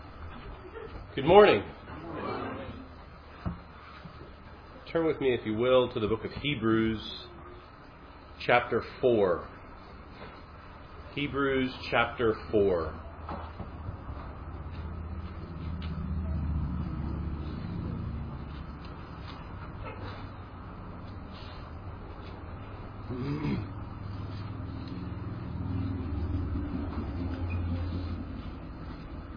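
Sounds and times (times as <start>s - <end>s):
speech: 1.2s - 1.8s, 4.9s - 7.3s, 8.4s - 9.5s, 11.2s - 13.4s
heavy morning road traffic rumble: 12.5s - 29.3s.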